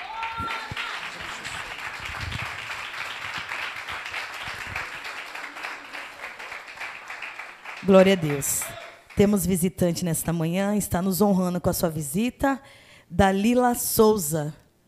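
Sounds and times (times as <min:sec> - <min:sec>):
church audience clapping: 0:00.0 - 0:09.4
speech: 0:07.9 - 0:14.6.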